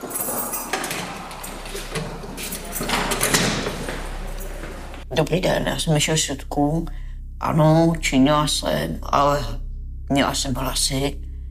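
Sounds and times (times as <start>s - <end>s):
huge bunch of keys rattling: 0.0s - 5.0s
prison cell door being unlocked: 0.0s - 5.0s
speech: 5.2s - 11.2s.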